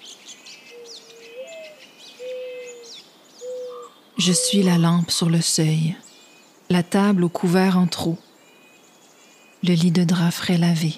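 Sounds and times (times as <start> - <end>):
birds chirping and twittering: 0.0 - 10.9
mourning dove cooing: 0.8 - 4.8
speech: 4.2 - 6.1, 6.7 - 8.3, 9.6 - 10.9.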